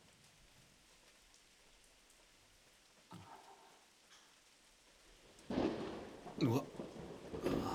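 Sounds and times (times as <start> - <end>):
stormy rain: 0.0 - 7.7
rolling thunderclaps: 5.5 - 7.7
speech: 6.4 - 7.7.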